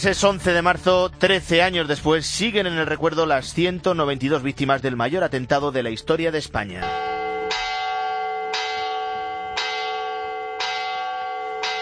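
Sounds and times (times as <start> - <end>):
speech: 0.0 - 7.1
church bells tolling: 6.8 - 11.8.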